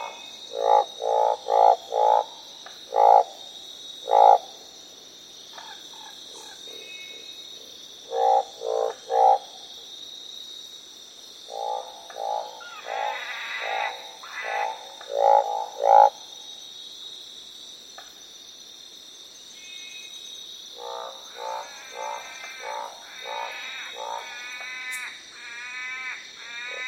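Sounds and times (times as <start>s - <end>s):
Northern barred frog croaks: 0.0s - 4.7s, 8.0s - 9.8s, 11.4s - 16.7s, 20.7s - 26.8s.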